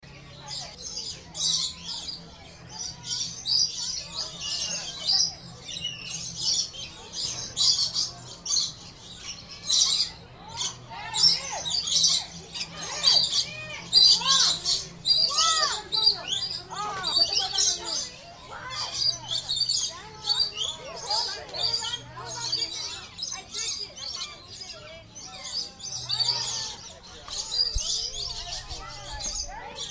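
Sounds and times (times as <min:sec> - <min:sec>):
lorikeets in an aquarium exhibit: 0:00.2 - 0:29.8.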